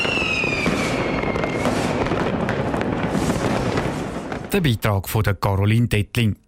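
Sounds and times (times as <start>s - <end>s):
whistling rocket rising and falling: 0.0s - 3.9s
fireworks bursting and crackling: 0.0s - 5.1s
speech: 4.5s - 6.4s.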